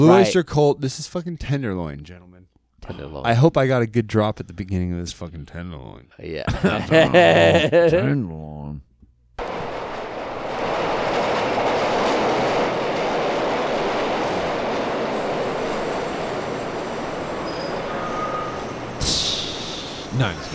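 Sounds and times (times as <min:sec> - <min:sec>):
speech: 0:00.0 - 0:08.9, 0:20.1 - 0:20.5
laughter: 0:06.4 - 0:08.2
train rumbling on tracks: 0:09.4 - 0:20.5
train wheels clattering over rails: 0:09.4 - 0:20.5
faint metallic squeal of train: 0:16.9 - 0:20.5.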